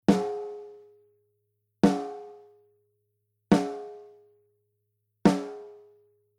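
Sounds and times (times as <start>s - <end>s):
snare drum with EQ and compression: 0.1s - 0.6s, 1.9s - 2.3s, 3.6s - 4.0s, 5.3s - 5.8s.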